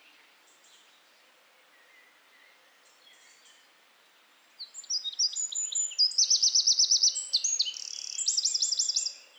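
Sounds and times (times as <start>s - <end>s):
Eurasian wren Troglodytes troglodytes singing with ringing trills: 4.9s - 9.2s.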